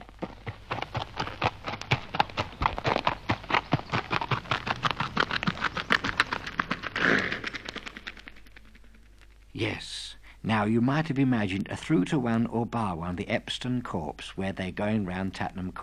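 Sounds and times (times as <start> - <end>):
imitation horse hooves clip-clopping at a trotting pace: 0.0 - 9.5
speech: 9.6 - 15.8.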